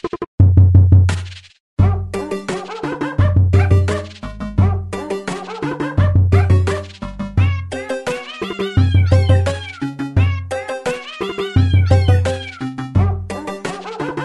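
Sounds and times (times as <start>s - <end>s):
bouncy repeating video game melody: 1.8s - 14.2s
pitched cat meows in video game remake music: 7.4s - 12.8s.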